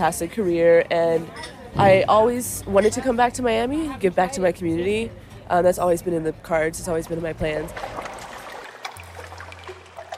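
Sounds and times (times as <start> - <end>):
speech: 0.0 - 7.8
bay water lapping at the edges of an abandoned speedboat racing stadium: 7.4 - 10.1.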